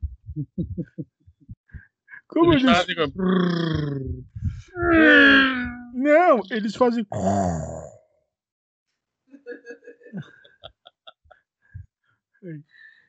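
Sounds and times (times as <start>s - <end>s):
speech: 0.4s - 1.2s, 2.4s - 7.9s, 10.1s - 10.4s, 12.4s - 12.7s
voice imitating snoring: 7.1s - 8.0s
laughter: 9.4s - 11.4s.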